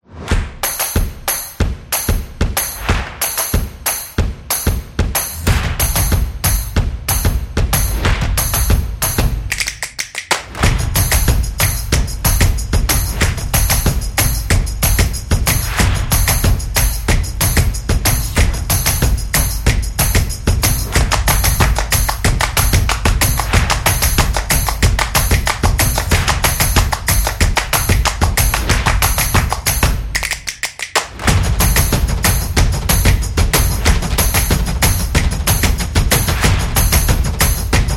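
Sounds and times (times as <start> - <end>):
upbeat action drums: 0.1 - 37.9.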